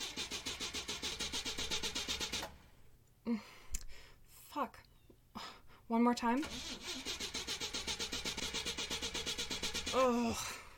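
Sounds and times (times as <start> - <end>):
rental car engine cranking but failing to start: 0.0 - 2.7, 6.4 - 10.0
speech: 3.3 - 3.6, 4.6 - 4.8, 5.9 - 6.8, 10.0 - 10.6.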